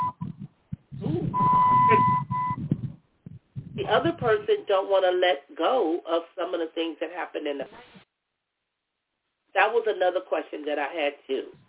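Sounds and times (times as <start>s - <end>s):
mobile phone beeping: 0.0s - 0.5s, 1.1s - 2.8s
speech: 3.9s - 8.0s, 9.6s - 11.6s.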